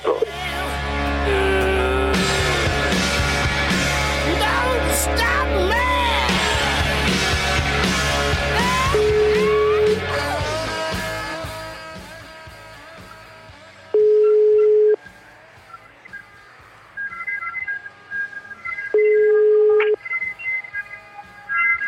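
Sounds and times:
busy musical backdrop: 0.0s - 21.8s
telephone ringing with long single-pitch ring tones: 9.0s - 10.0s, 14.0s - 15.0s, 18.9s - 20.0s.

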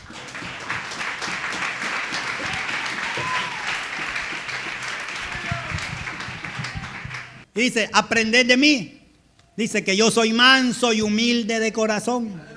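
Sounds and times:
church congregation applauding: 0.0s - 7.5s
speech: 7.6s - 9.0s, 9.6s - 12.5s.

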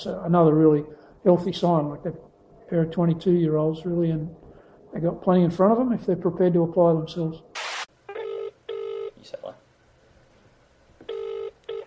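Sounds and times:
speech: 0.0s - 7.6s
telephone ringing with an electronic buzzing tone: 8.1s - 9.2s, 11.1s - 11.8s.

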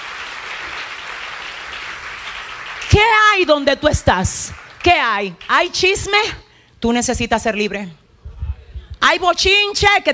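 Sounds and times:
church congregation applauding: 0.0s - 5.6s
speech: 3.0s - 8.0s, 9.0s - 10.1s.

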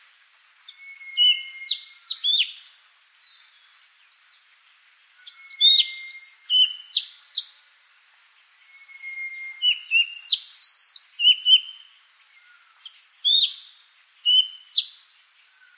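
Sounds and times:
Madagascar magpie-robin singing rapid chirps and slurred whistles: 0.6s - 2.6s, 5.1s - 7.6s, 8.6s - 11.9s, 12.5s - 15.7s
faint steady whistle: 8.6s - 9.9s.

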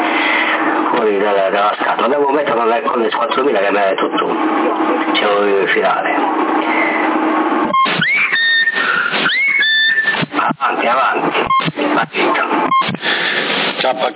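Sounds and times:
steady CB radio static: 0.8s - 14.1s
speech: 1.1s - 7.2s, 10.6s - 14.1s
CB radio roger beeps: 7.6s - 13.3s.

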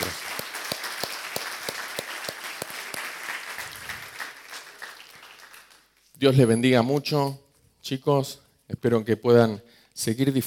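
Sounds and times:
church congregation applause: 0.0s - 5.9s
speech: 6.2s - 10.4s.

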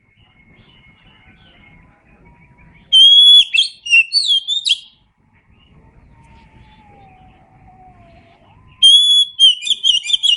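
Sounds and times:
Oriental magpie-robin whistling: 0.2s - 5.0s, 8.7s - 10.3s.

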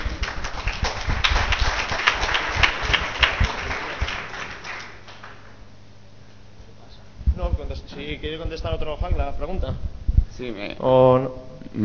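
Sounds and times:
audience applause at a hack lab talk: 0.0s - 5.6s
speech: 8.2s - 11.8s.

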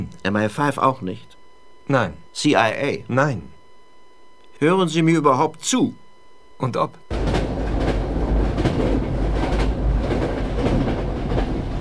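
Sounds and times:
speech: 0.2s - 3.6s, 4.6s - 6.0s, 6.6s - 7.0s
passenger train on the Scotland-to-London line running on rails: 7.1s - 11.7s
passenger train wheels clacking over track joints: 7.1s - 11.7s.

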